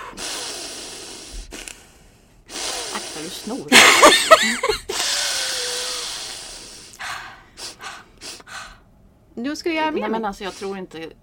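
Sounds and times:
deliberate deep breathing in and out: 0.0 - 3.7, 4.9 - 8.9
speech: 3.0 - 5.0, 9.4 - 11.2.

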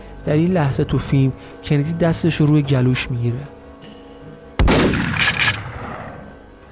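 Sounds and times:
speech: 0.2 - 3.6
single sharp gunshot with rolling noisy echo: 4.6 - 6.2.

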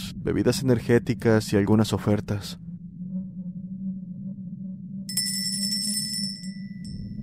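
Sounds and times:
speech: 0.2 - 2.7
shop door bell tinkling as door opens: 5.1 - 7.0.

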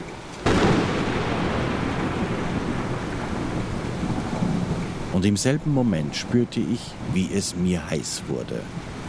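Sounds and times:
loud thunder crack from a lightning strike: 0.4 - 5.1
speech: 5.2 - 8.9.

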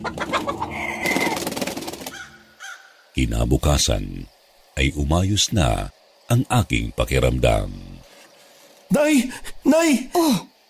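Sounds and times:
black chickens clucking and squawking: 0.0 - 2.9
speech: 3.2 - 7.8, 8.9 - 10.5.

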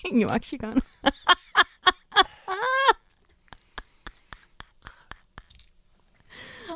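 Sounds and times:
speech: 0.1 - 1.4
person chewing dry cat food kibble: 5.3 - 6.3.

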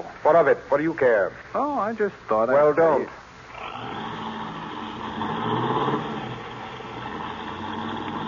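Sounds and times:
speech: 0.2 - 3.2
car engine revving as the car pulls away: 3.5 - 8.2.

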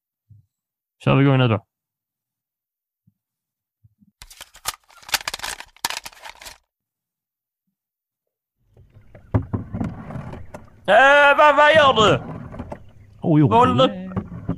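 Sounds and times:
speech: 1.0 - 1.7, 10.9 - 12.3, 13.2 - 14.0
water sloshing: 8.7 - 14.5
oars dipping and splashing from a small boat: 8.8 - 14.5.

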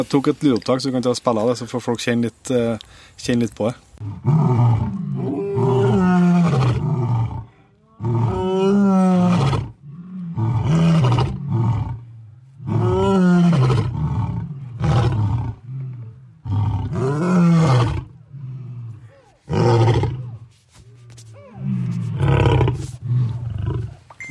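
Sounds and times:
speech: 0.0 - 5.0
lion roaring: 4.0 - 20.5, 21.3 - 24.0.

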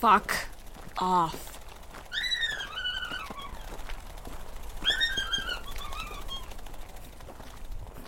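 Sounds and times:
speech: 0.0 - 1.5
small bird cooing and chirping: 2.0 - 7.0.

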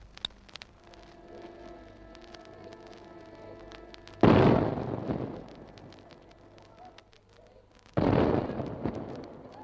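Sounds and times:
low steady hum: 0.0 - 9.6
artillery blasts from a 21-gun salute fired by an army field artillery battery: 4.2 - 6.1, 8.0 - 9.6.

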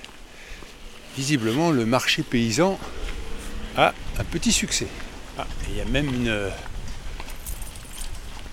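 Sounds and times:
speech: 1.2 - 3.0, 3.8 - 6.7
steady low rumble: 2.2 - 7.6
Ardennes draft horses' hooves clopping on a hard road pulling a cart: 2.4 - 8.5.

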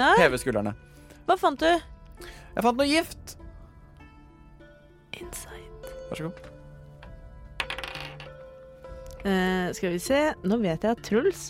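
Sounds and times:
speech: 0.0 - 3.4, 6.1 - 6.5, 9.2 - 11.4
dice clattering onto a hard tabletop: 7.6 - 8.4.

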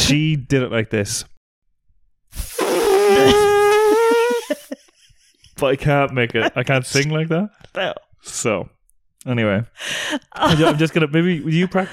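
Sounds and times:
speech: 0.1 - 1.3, 5.6 - 11.9
woman imitating an elephant trumpet: 2.6 - 4.5
laughter: 4.4 - 7.1, 10.3 - 11.9.

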